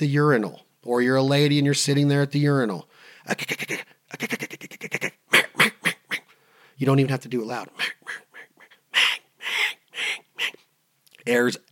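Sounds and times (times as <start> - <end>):
speech: 0.0 - 5.2, 6.8 - 8.2, 11.2 - 11.6
person vocally imitating hen mallard duck quacks: 3.3 - 6.3, 7.8 - 10.6.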